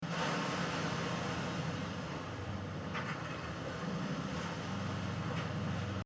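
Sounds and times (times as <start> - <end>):
fishing cutter background noise: 0.1 - 6.0.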